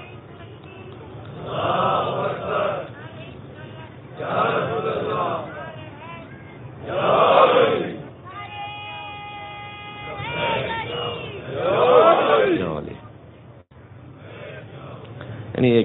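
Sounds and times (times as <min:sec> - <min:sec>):
quieter murmuring of voices: 0:00.0 - 0:13.1, 0:14.2 - 0:15.4
crowd chanting a religious salutation in unison: 0:01.3 - 0:05.9, 0:06.8 - 0:08.1, 0:09.9 - 0:12.7, 0:14.2 - 0:15.2.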